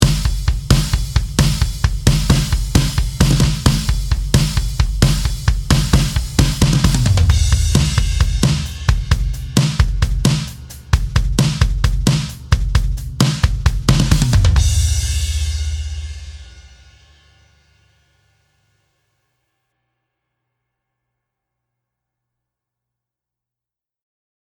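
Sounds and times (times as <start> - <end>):
low tuned drums: 0.0 - 17.4.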